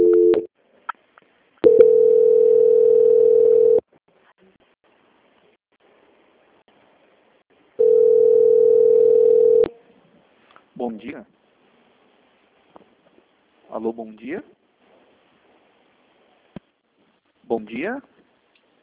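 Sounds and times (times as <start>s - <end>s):
telephone ringback tone while a call is being transferred: 0.0s - 0.5s, 1.6s - 3.8s, 7.8s - 9.7s
speech: 14.0s - 14.6s, 17.6s - 18.1s.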